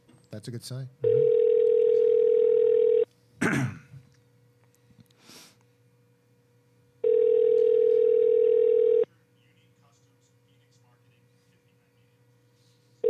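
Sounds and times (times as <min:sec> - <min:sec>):
speech: 0:00.3 - 0:01.2, 0:03.5 - 0:03.8
phone outgoing ringback tone: 0:01.0 - 0:03.1, 0:07.0 - 0:09.1
brief cough-like noise: 0:03.4 - 0:04.1.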